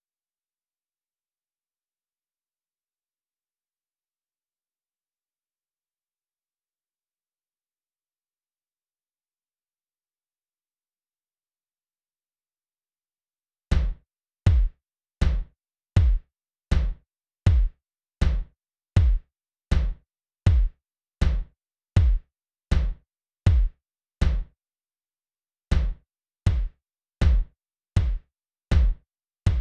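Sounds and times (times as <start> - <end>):
lounge kick drums: 13.7 - 24.6, 25.7 - 29.6.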